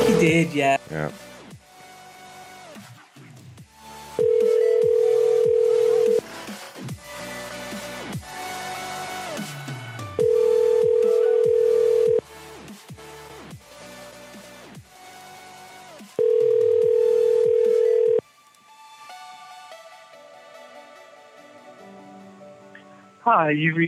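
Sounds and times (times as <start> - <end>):
speech: 0.2 - 1.2, 23.4 - 23.8
phone ringback tone of a call: 4.2 - 6.2, 10.2 - 12.2, 16.2 - 18.2.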